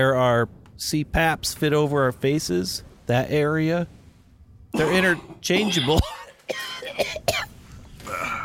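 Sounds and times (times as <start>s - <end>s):
speech: 0.0s - 4.0s, 4.7s - 7.2s
rough throaty vocal sounds: 4.8s - 6.0s
person coughing: 4.8s - 8.4s.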